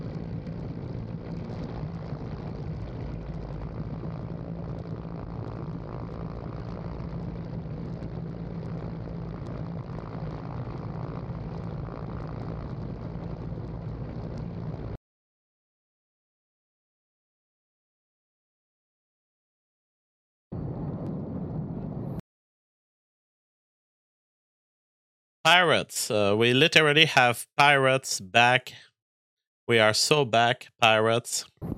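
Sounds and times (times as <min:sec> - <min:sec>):
helicopter rotor and engine roaring: 0:00.0 - 0:15.0
speech: 0:25.5 - 0:28.9, 0:29.7 - 0:31.7.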